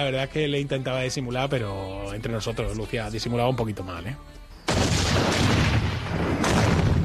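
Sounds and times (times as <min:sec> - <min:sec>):
speech: 0:00.0 - 0:04.4
loud booms from homemade liquor exploding: 0:04.7 - 0:07.0.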